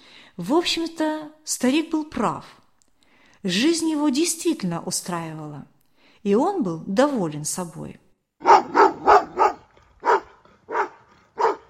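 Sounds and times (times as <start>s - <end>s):
speech: 0.4s - 2.6s, 3.4s - 8.0s
dog barking hoarsely and with strain: 8.4s - 11.6s.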